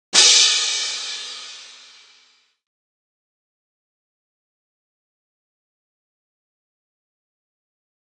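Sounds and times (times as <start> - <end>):
cymbals: 0.1 - 2.4.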